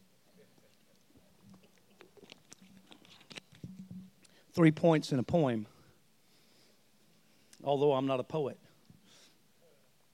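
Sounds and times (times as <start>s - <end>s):
swallowing: 0.5s - 3.7s
person sipping water with soft wet slurps: 1.2s - 4.4s
speech: 4.6s - 5.7s, 7.7s - 8.6s.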